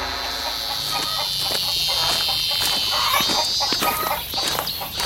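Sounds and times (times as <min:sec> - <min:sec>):
fighting rooster clucking and calling: 0:00.1 - 0:05.0.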